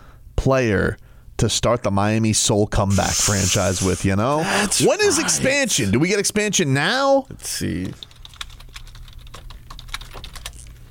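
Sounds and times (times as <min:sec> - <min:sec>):
low hum: 0:00.0 - 0:10.8
speech: 0:00.4 - 0:08.1
rapid typing on a computer keyboard: 0:07.9 - 0:10.8.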